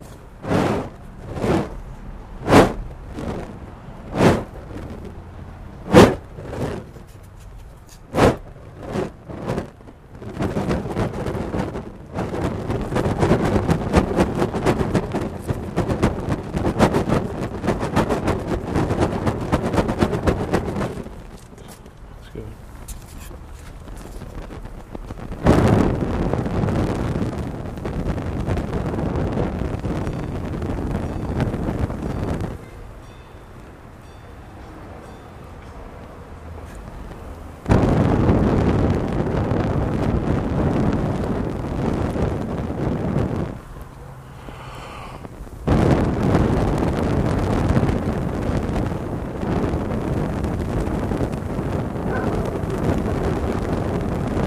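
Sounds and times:
blowing on torch flame: 0.0s - 34.0s, 36.6s - 54.4s.

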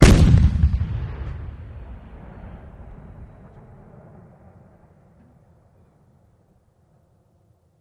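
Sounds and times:
cannon blast: 0.0s - 5.1s.

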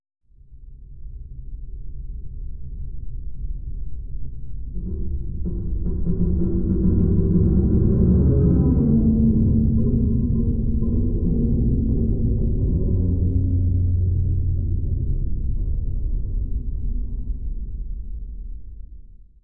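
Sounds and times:
low underwater metal groan atmosphere: 4.6s - 17.4s.

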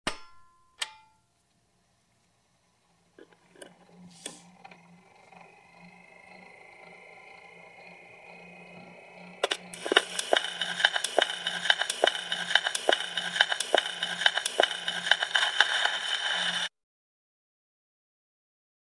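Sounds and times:
Victrola record player cue: 2.7s - 16.7s.

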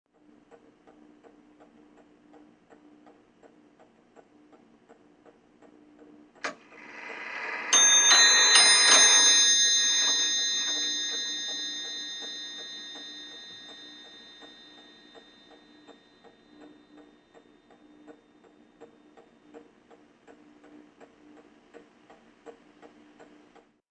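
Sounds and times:
mantel clock striking: 6.4s - 17.8s.

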